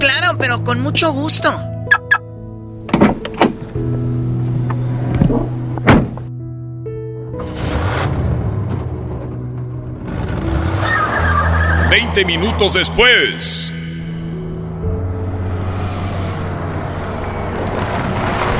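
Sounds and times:
car engine and road noise as it drives away: 0.0 - 18.5
speech: 0.4 - 1.7, 11.9 - 13.9
car clunks and clicks: 2.8 - 6.3.

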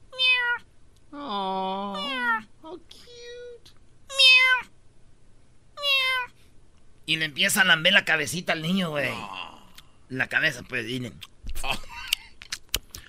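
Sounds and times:
kitten giving short high-pitched meows: 0.1 - 0.6, 1.9 - 2.4, 4.1 - 4.7, 5.8 - 6.3
speech: 7.1 - 9.5, 10.1 - 11.8.

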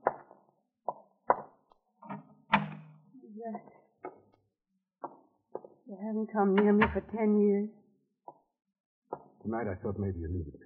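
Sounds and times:
French door latch clunks and rattles: 2.1 - 3.0
French door thud as it swings free: 2.5 - 3.0, 6.5 - 7.2
speech: 3.4 - 3.8, 6.0 - 7.8, 9.5 - 10.6.

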